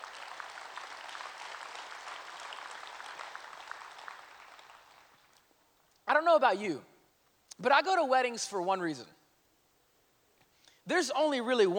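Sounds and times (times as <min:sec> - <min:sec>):
sustained crowd applause with hand clapping: 0:00.0 - 0:05.4
speech: 0:06.2 - 0:06.9, 0:07.6 - 0:09.2, 0:10.9 - 0:11.7.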